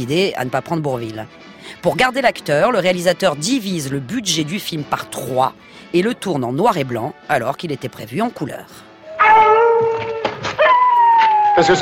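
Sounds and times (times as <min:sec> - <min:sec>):
speech: 0:00.0 - 0:08.9, 0:11.6 - 0:11.8
pack of wolves howling beside the Jardin des Plantes in Paris: 0:09.0 - 0:11.8.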